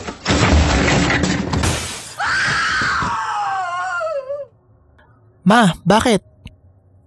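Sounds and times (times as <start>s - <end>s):
loud shattering crash: 0.0s - 3.0s
woman's long piercing scream: 2.2s - 4.5s
speech: 5.5s - 6.3s.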